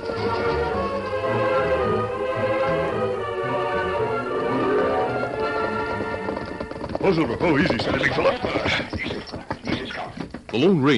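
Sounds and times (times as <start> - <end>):
horses galloping: 0.0 - 1.9, 4.0 - 10.9
orchestral music: 0.0 - 6.6
speech: 7.1 - 9.1, 10.5 - 10.9.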